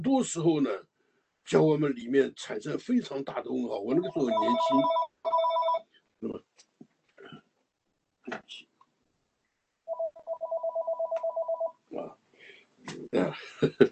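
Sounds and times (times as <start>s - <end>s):
speech: 0.0s - 5.0s, 6.2s - 6.5s, 13.1s - 13.8s
telephone ringing: 3.9s - 5.8s, 9.9s - 11.8s
laughter: 13.2s - 13.8s.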